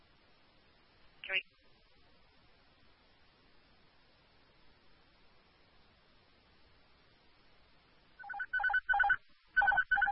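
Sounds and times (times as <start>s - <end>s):
faint hiss: 0.0s - 8.3s, 9.2s - 9.6s
phone ringtone with bright electronic melody: 8.2s - 10.1s.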